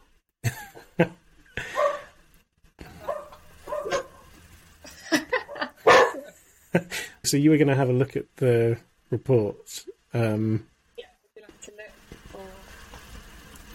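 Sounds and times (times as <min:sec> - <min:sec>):
speech: 0:01.0 - 0:01.2, 0:07.3 - 0:10.7
two pet dogs barking: 0:01.6 - 0:02.1, 0:03.0 - 0:04.3, 0:05.7 - 0:06.3.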